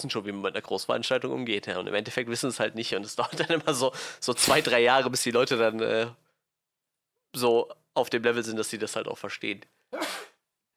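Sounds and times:
speech: 0.0 - 6.2, 7.3 - 10.2
laughter: 3.2 - 3.8
sneeze: 10.0 - 10.4.

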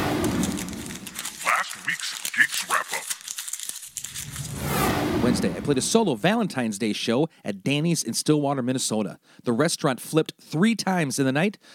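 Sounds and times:
dog chewing noisily on a bully stick: 0.0 - 4.2
speech: 5.3 - 11.7.

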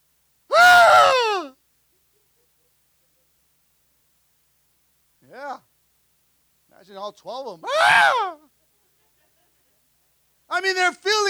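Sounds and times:
male preacher imitating an anguished wail: 0.5 - 1.5, 5.3 - 5.6, 7.6 - 8.4
speech: 6.9 - 8.4, 10.5 - 11.2.

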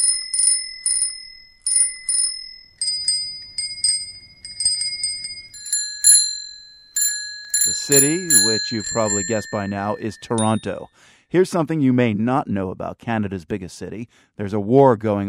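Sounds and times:
little chrome bicycle bells on handlebars ringing in Toronto: 0.0 - 10.9
speech: 7.9 - 15.2.

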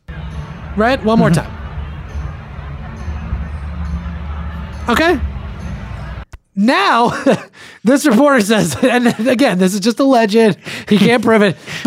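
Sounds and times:
crowd chatter: 0.0 - 6.2
speech: 0.8 - 1.6, 4.9 - 5.3, 6.6 - 11.8
laughter: 0.9 - 3.0, 7.0 - 9.6.

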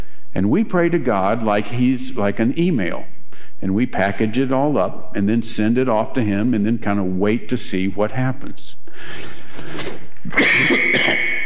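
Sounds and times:
speech: 0.4 - 11.2
person coughing: 10.3 - 11.4.

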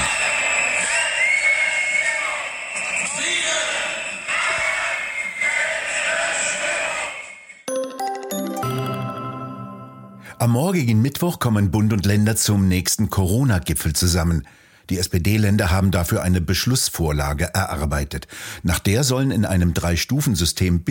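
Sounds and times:
protest crowd whistles: 0.0 - 5.6
large protest crowd shouting: 0.0 - 7.4
large protest crowd cheering: 0.0 - 10.1
short bright chiming jingle: 7.7 - 10.9
speech: 10.4 - 20.8.

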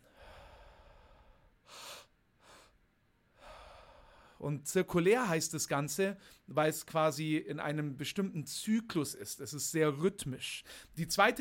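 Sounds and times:
person breathing two quick inhales and a gentle exhale: 0.0 - 4.4
speech: 4.4 - 11.4.

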